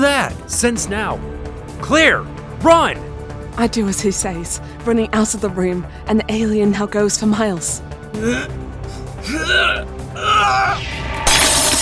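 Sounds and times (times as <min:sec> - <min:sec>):
speech: 0:00.3 - 0:11.0
person making strained voiced groans and gasps: 0:08.2 - 0:10.8
mirror smashing with a crash of breaking glass: 0:11.2 - 0:11.8.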